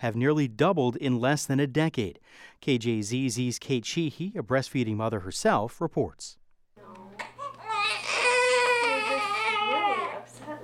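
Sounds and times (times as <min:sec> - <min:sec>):
speech: 0:00.0 - 0:06.4
newborn baby crying: 0:07.2 - 0:10.3.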